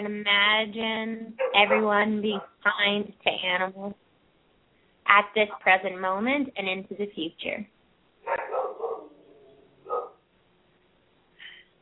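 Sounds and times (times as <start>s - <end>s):
speech: 0.0s - 4.0s, 5.1s - 8.5s
dogs barking: 1.4s - 2.6s, 8.2s - 10.2s.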